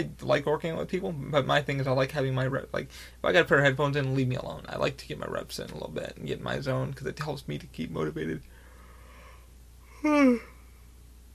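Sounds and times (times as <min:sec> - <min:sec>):
speech: 0:00.0 - 0:08.5, 0:10.0 - 0:10.5
person yawning with a voiced sighing tone: 0:09.9 - 0:10.6.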